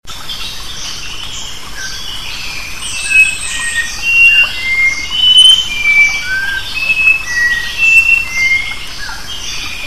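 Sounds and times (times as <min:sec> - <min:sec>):
sooty-capped babbler whistles: 0:03.0 - 0:08.8.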